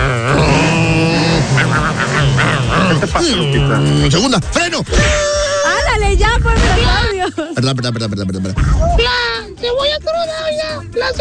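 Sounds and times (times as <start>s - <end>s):
voice imitating a revving car engine: 0.0s - 4.2s
laughter: 0.6s - 5.9s, 7.1s - 8.6s
speech: 3.0s - 5.4s, 6.0s - 11.2s.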